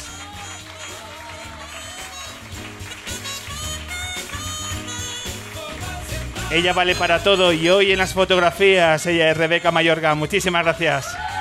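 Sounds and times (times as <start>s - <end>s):
audience applauding: 0.0s - 8.1s
crowd noise: 0.0s - 11.3s
music playing: 0.0s - 11.3s
speech: 6.5s - 11.3s.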